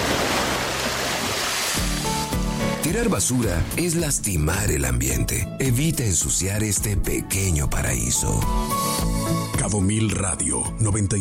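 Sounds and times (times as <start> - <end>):
ocean surf of the Sea of Cortez: 0.0 - 3.9
speech: 2.9 - 11.1.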